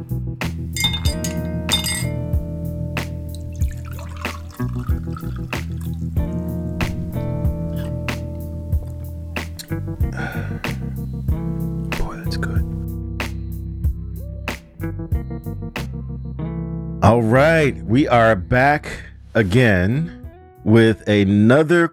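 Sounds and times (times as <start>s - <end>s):
sustained musical backdrop: 0.0s - 21.3s
glasses clinking in a toast: 0.8s - 2.3s, 3.3s - 6.0s
speech: 17.3s - 21.9s.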